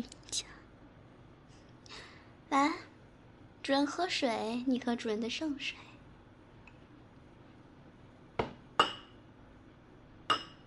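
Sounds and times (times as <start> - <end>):
speech: 0.0 - 0.5, 2.5 - 2.8, 3.7 - 5.9
cups clinking together in a toast: 8.4 - 9.2, 10.3 - 10.6.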